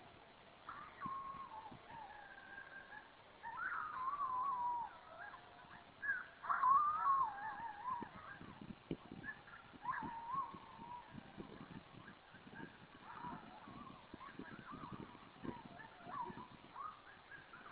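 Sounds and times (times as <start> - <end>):
coyote howling: 0.7 - 17.7.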